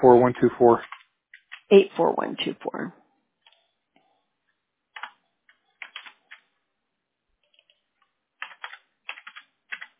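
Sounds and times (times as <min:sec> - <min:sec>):
speech: 0:00.0 - 0:01.0, 0:01.7 - 0:03.0
typing on a computer keyboard: 0:00.8 - 0:01.7, 0:04.9 - 0:06.5, 0:07.4 - 0:09.9.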